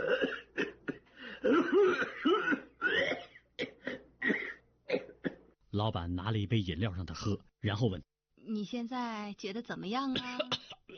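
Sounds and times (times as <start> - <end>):
person coughing violently: 0.0 - 5.6
speech: 5.8 - 10.9.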